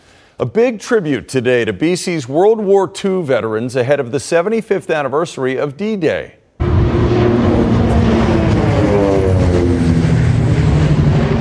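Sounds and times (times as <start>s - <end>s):
speech: 0.4s - 6.4s
World War II Canso aircraft flying over a historic coastal fort: 6.6s - 11.3s.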